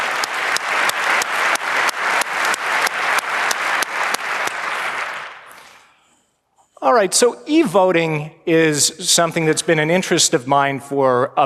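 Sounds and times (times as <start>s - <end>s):
audience applause: 0.0s - 5.8s
speech: 6.9s - 11.4s.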